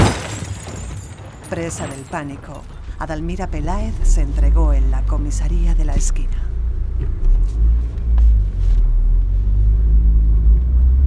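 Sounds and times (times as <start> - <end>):
speech: 1.5 - 7.1
powerful German car engine rumbling: 2.5 - 11.0.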